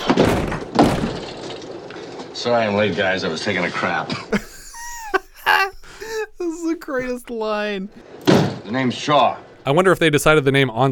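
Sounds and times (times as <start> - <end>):
wooden door being kicked open: 0.0 - 1.8
speech: 2.4 - 4.5, 6.9 - 10.9
laughter: 4.3 - 7.9.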